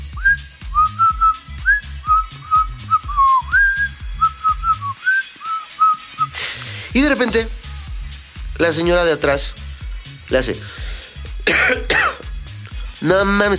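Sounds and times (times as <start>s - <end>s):
person whistling a cheerful bouncy melody: 0.0s - 6.4s
plucked rhythmic musical backing: 0.0s - 13.5s
speech: 7.0s - 7.6s, 8.6s - 9.6s, 10.3s - 10.8s, 11.5s - 12.0s, 13.0s - 13.5s.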